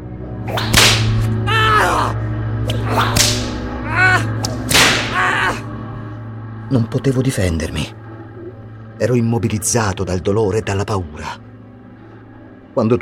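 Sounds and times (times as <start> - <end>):
speech: 0.4 - 0.9, 6.7 - 8.0, 9.0 - 11.5, 12.8 - 12.9
violent whip lashes cracking: 0.5 - 1.3, 2.7 - 3.6, 4.4 - 5.2
strained pained vocal cries: 1.3 - 4.4, 5.0 - 5.8.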